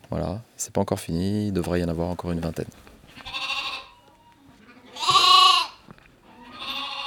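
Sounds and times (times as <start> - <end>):
speech: 0.1 - 3.3
sheep and lambs bleating in a sheepfold: 3.2 - 7.0.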